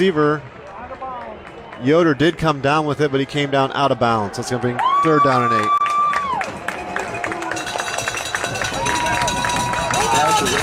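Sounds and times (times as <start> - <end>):
speech: 0.0 - 0.5, 1.8 - 5.8
stadium football crowd cheering and general babble: 0.0 - 10.6
stadium crowd of football fans stomping: 5.8 - 10.6
cowbells clanging by football fans in a stadium: 7.5 - 10.6.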